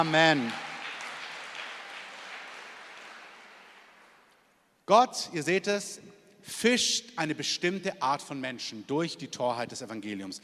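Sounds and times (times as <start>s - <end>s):
speech: 0.0s - 0.7s, 4.9s - 10.4s
audience applause: 0.0s - 4.4s.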